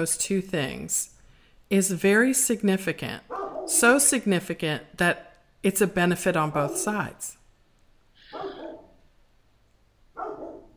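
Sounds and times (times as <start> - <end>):
speech: 0.0 - 7.4
dog barking: 3.3 - 3.7, 8.3 - 9.0, 10.2 - 10.7.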